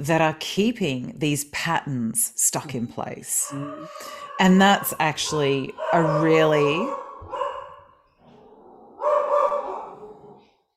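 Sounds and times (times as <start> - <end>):
speech: 0.0 - 7.4
dog barking: 3.5 - 8.0, 8.7 - 10.5.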